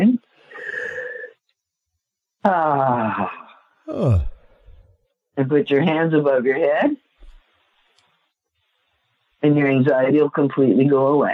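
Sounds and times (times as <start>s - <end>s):
speech: 2.4s - 4.3s, 5.4s - 7.0s, 9.4s - 11.3s
person yawning with a loud vocal groan: 3.9s - 4.8s.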